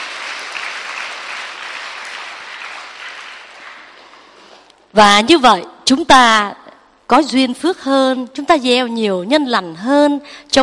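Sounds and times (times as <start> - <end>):
crowd of children applauding: 0.0 - 4.2
speech: 4.9 - 10.6.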